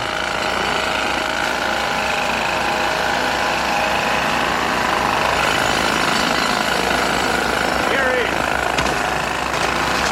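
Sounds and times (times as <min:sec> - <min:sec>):
jackhammer pounding: 0:00.0 - 0:10.1.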